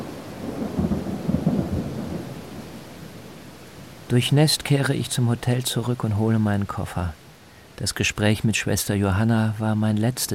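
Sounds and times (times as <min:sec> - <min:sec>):
thunder rumbling in a summer thunderstorm over a mountain village: 0:00.0 - 0:02.8
steady rain in a summer thunderstorm: 0:00.0 - 0:10.3
speech: 0:04.1 - 0:07.2, 0:07.8 - 0:10.3.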